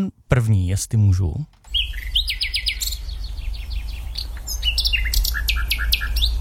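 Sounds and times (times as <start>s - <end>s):
speech: 0.0s - 2.1s
low steady hum: 0.0s - 6.3s
common nightingale singing: 1.6s - 6.3s.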